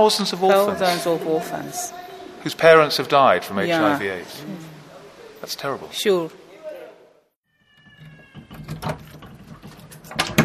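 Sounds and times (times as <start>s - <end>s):
speech: 0.0s - 4.7s, 5.4s - 6.4s
cupboard door creaking open: 7.5s - 10.4s
things rattling and clunking inside a cupboard: 8.0s - 10.4s.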